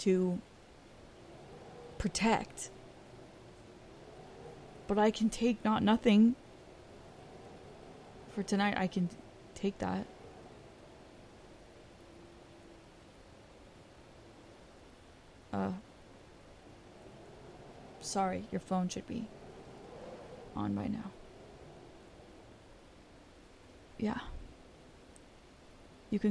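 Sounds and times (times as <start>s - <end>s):
speech: 0.0s - 0.5s, 2.0s - 2.8s, 4.9s - 6.4s, 8.4s - 10.1s, 18.1s - 19.4s, 20.6s - 21.2s, 24.0s - 24.3s
steady hiss of a rainstorm: 0.0s - 26.2s.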